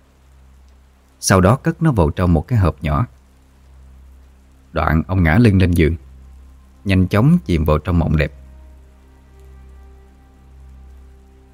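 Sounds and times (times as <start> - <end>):
light rain falling near dawn: 0.0 - 11.5
speech: 1.2 - 3.2, 4.7 - 6.0, 6.8 - 8.4.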